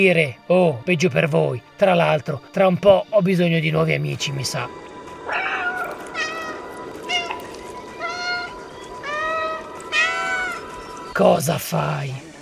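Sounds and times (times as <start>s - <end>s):
speech: 0.0s - 5.5s, 11.2s - 12.2s
cat meowing plaintively: 5.3s - 10.7s.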